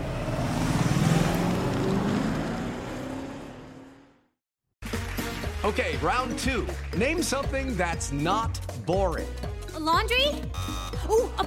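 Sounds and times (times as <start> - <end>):
rushing road and wind noise: 0.0 - 4.1
car engine accelerating while passing a truck: 0.0 - 4.4
speech: 5.6 - 11.4.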